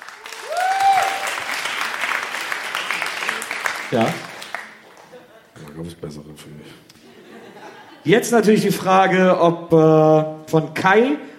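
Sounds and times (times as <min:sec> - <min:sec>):
crowd applauding: 0:00.0 - 0:05.4
whistle or whoop: 0:00.4 - 0:01.3
speech: 0:03.9 - 0:04.3, 0:05.8 - 0:07.0, 0:08.0 - 0:11.3
laughter: 0:04.7 - 0:05.8, 0:07.0 - 0:08.3.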